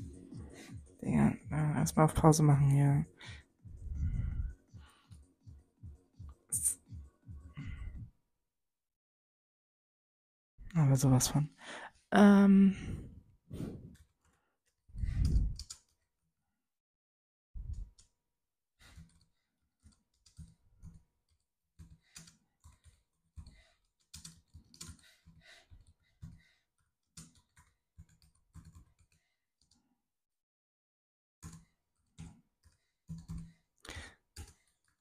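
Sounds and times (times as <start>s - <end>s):
speech: 1.0s - 3.4s, 10.9s - 13.8s
soft keyboard typing while writing a message: 15.1s - 16.0s, 18.8s - 26.4s, 27.1s - 29.8s, 31.4s - 34.9s.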